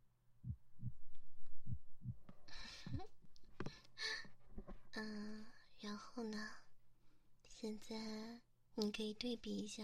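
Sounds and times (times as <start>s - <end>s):
slow regular human heartbeat: 0.4s - 3.2s
rustling and scraping: 4.4s - 5.0s
speech: 5.0s - 6.7s, 7.6s - 9.8s.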